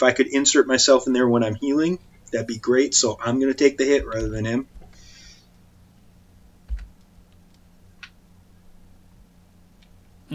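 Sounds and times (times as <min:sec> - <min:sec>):
speech: 0:00.0 - 0:04.8
low steady hum: 0:00.0 - 0:10.3
computer keyboard taps: 0:04.0 - 0:05.0, 0:06.6 - 0:07.1.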